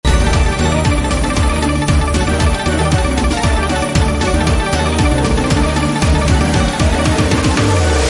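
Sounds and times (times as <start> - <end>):
game win background music: 0.0 - 8.0.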